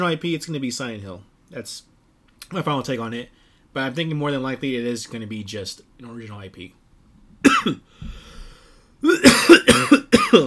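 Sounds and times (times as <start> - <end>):
speech: 0.0 - 1.9, 2.5 - 6.8, 7.4 - 8.2, 9.0 - 10.4
person coughing from trail mix stuck in throat: 7.4 - 7.9, 9.0 - 10.4.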